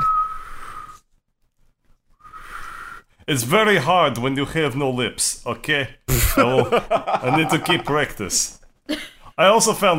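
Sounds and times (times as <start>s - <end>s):
breathy airy whistling attempt: 0.0s - 1.1s, 2.1s - 3.2s
speech: 3.3s - 9.9s
laughter: 6.1s - 8.2s.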